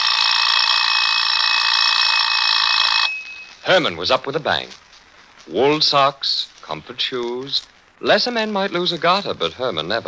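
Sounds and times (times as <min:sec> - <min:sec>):
alarm clock ringing with metallic bell jangle: 0:00.0 - 0:03.6
speech: 0:03.7 - 0:04.8, 0:05.5 - 0:10.0.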